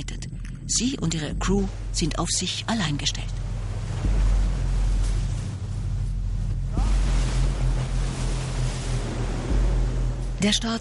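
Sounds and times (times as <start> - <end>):
speech: 0.0 - 3.4, 10.4 - 10.7
water rushing and splashing on choppy open water: 1.4 - 10.7
strong wind buffeting the microphone: 1.5 - 10.7.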